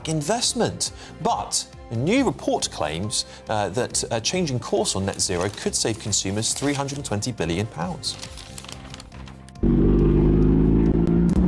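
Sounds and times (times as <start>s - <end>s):
speech: 0.0s - 8.5s
race car engine idling and revving: 9.6s - 11.4s.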